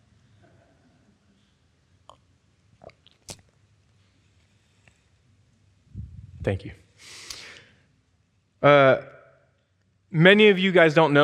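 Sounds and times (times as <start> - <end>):
low hum: 0.0 - 11.2
person sipping a drink: 2.0 - 3.6
speech: 6.4 - 7.2, 8.6 - 9.1, 10.1 - 11.2.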